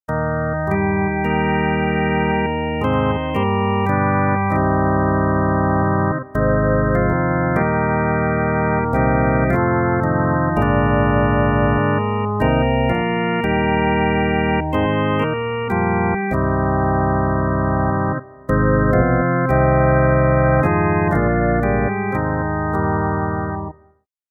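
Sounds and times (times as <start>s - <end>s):
Vox Continental combo organ: 0.1s - 23.8s.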